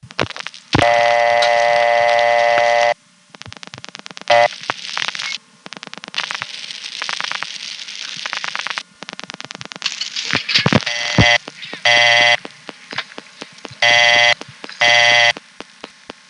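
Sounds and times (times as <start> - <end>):
buzzy telephone tone: 0.8 - 3.0, 4.3 - 5.4, 10.7 - 12.4, 13.8 - 15.4.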